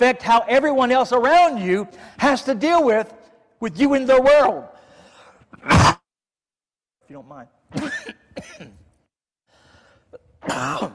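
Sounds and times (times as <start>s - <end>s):
speech: 0.0s - 4.7s, 5.5s - 5.9s, 7.1s - 8.8s, 10.4s - 10.9s
person coughing: 5.5s - 6.1s, 7.7s - 8.9s, 10.2s - 10.9s.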